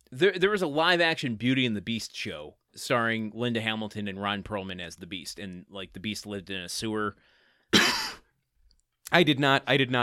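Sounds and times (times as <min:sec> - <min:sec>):
speech: 0:00.1 - 0:08.0, 0:09.1 - 0:10.0
person coughing: 0:07.7 - 0:08.3.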